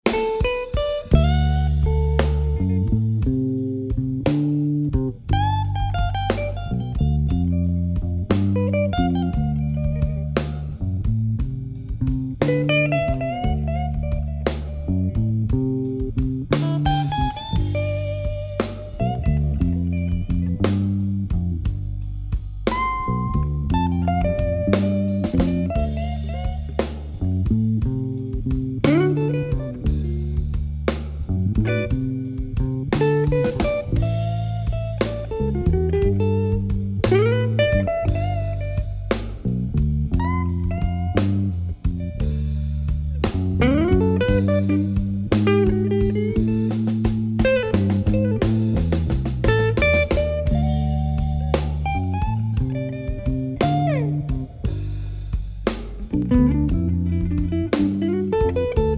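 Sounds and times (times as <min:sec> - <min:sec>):
slow blues drumming: 0:00.0 - 0:58.9.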